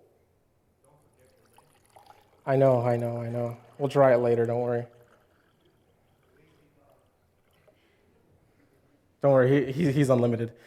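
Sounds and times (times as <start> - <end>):
water pouring steadily into jars: 0.9 - 8.1
speech: 2.4 - 5.0, 9.2 - 10.6.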